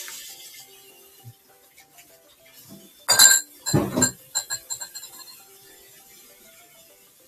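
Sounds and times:
knocks and rattles while washing dishes: 3.1s - 5.3s
glass and cutlery clinking while washing dishes: 3.1s - 5.4s.

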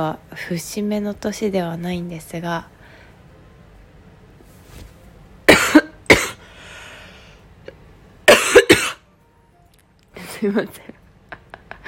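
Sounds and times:
speech: 0.0s - 2.7s, 10.4s - 11.0s
person coughing: 5.5s - 6.5s, 8.3s - 9.0s.

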